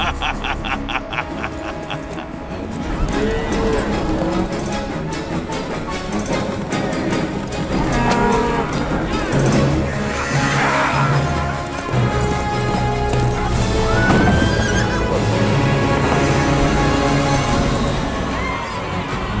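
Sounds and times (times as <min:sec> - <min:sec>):
laughter: 0:00.0 - 0:02.6
commotion: 0:00.0 - 0:19.3
cows mooing in a herd driven toward a dock: 0:02.8 - 0:05.0, 0:06.8 - 0:17.3.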